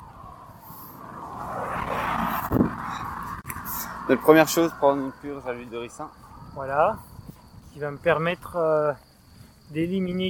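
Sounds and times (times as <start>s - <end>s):
car passing by: 0.1s - 6.3s
speech: 4.1s - 7.1s, 7.8s - 9.1s, 9.7s - 10.2s.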